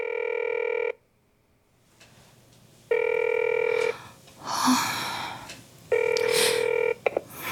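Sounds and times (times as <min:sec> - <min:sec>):
telephone ringback tone while calling: 0:00.0 - 0:01.0, 0:02.9 - 0:04.0, 0:05.9 - 0:07.1
breathy noise: 0:03.7 - 0:07.5.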